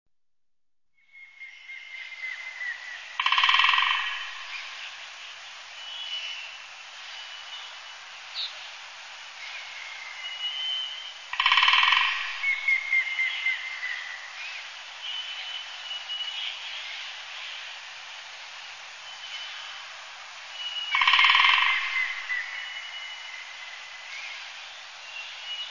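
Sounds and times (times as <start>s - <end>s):
yamagera and other birds calling: 1.3s - 6.6s, 9.4s - 17.1s, 20.6s - 25.6s.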